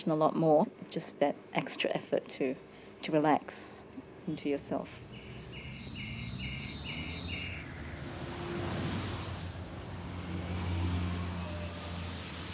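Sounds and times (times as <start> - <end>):
speech: 0.0 - 5.1
low engine hum: 4.0 - 12.5
traffic passing along a street: 4.0 - 12.5
brief repeated high chirping: 5.0 - 8.0.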